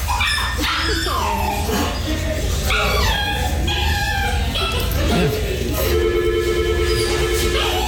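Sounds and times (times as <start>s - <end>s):
elderly dog whining: 0.0s - 5.9s
steady hum: 0.0s - 7.8s.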